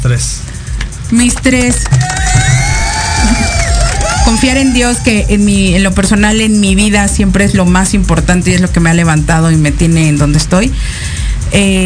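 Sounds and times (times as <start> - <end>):
speech: 0.2 - 2.2, 4.3 - 11.8
audience applause and cheering: 1.6 - 5.6
shrill whoops and whistles: 1.8 - 5.2.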